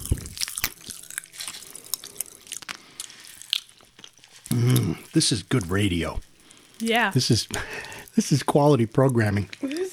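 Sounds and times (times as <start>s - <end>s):
wet chewing of fizzy candy: 0.0s - 9.9s
speech: 5.2s - 9.7s.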